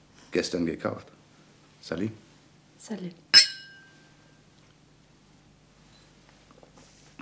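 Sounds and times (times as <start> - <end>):
speech: 0.4 - 1.2, 1.8 - 2.2, 2.8 - 3.2
two drinking glasses clinking: 3.4 - 4.0.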